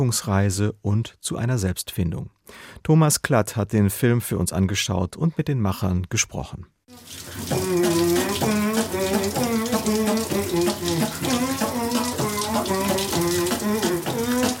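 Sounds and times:
speech: 0:00.0 - 0:08.6
running shower water: 0:06.9 - 0:14.5
person humming or singing a rhythmic melody: 0:07.5 - 0:14.5.

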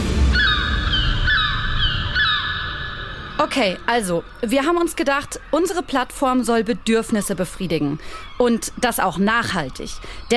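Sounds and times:
steady low rumble: 0:00.0 - 0:04.5
seagulls calling: 0:00.0 - 0:10.3
speech: 0:03.4 - 0:10.3.

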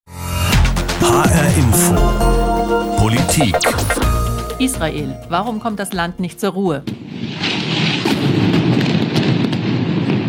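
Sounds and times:
speech: 0:01.0 - 0:07.4
loud continuous rumbling explosion blasts with sharper cracks: 0:06.8 - 0:10.2.

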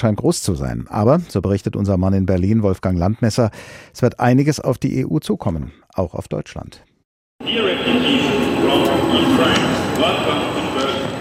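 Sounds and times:
speech: 0:00.0 - 0:10.4
crowd murmur on a train station platform: 0:07.4 - 0:11.1
indistinct voices: 0:07.4 - 0:11.1
rumbling rail noise of an arriving train: 0:07.4 - 0:11.1.

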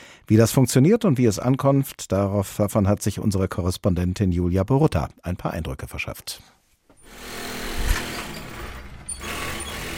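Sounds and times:
speech: 0:00.3 - 0:07.4
tailor's sewing machine running in a small shop in Paris: 0:07.0 - 0:09.9.

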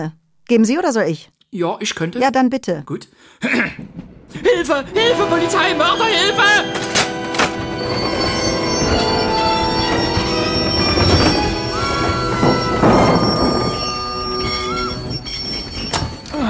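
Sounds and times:
speech: 0:00.0 - 0:07.0
rumbling rail clatter: 0:03.9 - 0:16.4
train braking hard with wheels squealing: 0:05.0 - 0:16.4.

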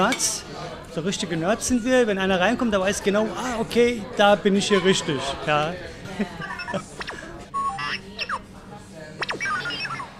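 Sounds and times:
speech: 0:00.0 - 0:06.9
faint murmur of a busy cafe: 0:00.0 - 0:10.1
toy robot beeping and whistling on a cafe counter: 0:06.4 - 0:08.5, 0:09.2 - 0:10.1.

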